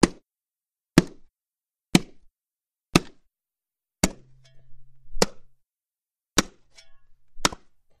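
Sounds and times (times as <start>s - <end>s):
bone chopping: 0.0s - 0.2s, 1.0s - 1.3s, 1.9s - 2.3s, 2.9s - 3.3s, 4.0s - 4.5s, 5.1s - 5.5s, 6.4s - 7.8s.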